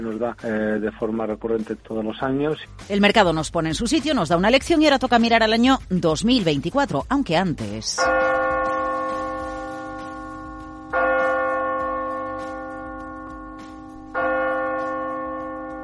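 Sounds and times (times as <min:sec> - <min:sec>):
speech: 0:00.0 - 0:08.4
deep resonant New Year's Eve bell chimes: 0:08.0 - 0:15.8.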